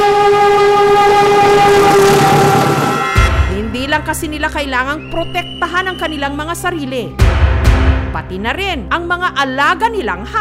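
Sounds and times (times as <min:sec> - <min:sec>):
train horn blaring: 0:00.0 - 0:04.6
speech: 0:04.0 - 0:10.3.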